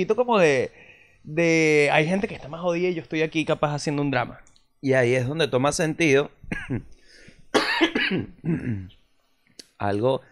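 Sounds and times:
speech: 0.0s - 9.0s, 9.8s - 10.2s
person coughing: 6.5s - 6.9s, 7.5s - 9.0s.

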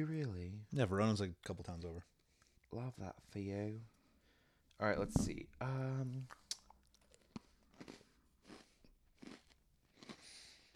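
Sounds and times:
speech: 0.0s - 4.0s, 4.8s - 6.4s
chewing of a crisp cookie: 6.3s - 10.7s.

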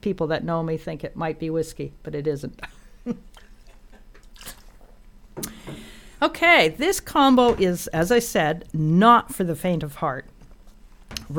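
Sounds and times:
speech: 0.0s - 3.5s, 5.4s - 10.3s
woman sipping and swallowing water: 3.3s - 6.1s.

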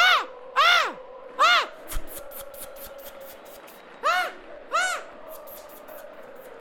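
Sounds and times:
person imitating an eagle's cry: 0.0s - 1.8s, 4.0s - 5.1s.

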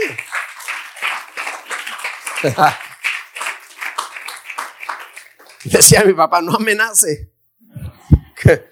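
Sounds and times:
audience applauding: 0.0s - 6.1s
laughter: 2.2s - 3.0s
speech: 2.4s - 2.8s, 5.6s - 7.3s, 8.5s - 8.7s.

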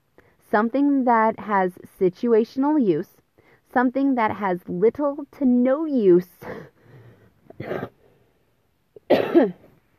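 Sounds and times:
speech: 0.5s - 6.7s, 7.6s - 7.9s, 9.4s - 9.6s
person coughing after choking on saliva: 7.5s - 8.0s, 9.0s - 9.7s.

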